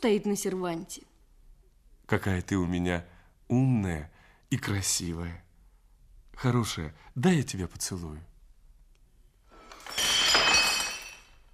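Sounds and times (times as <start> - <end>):
speech: 0.0 - 1.1, 2.1 - 5.4, 6.4 - 8.3
long-necked ceramic jug from Baku shattering: 9.6 - 11.5.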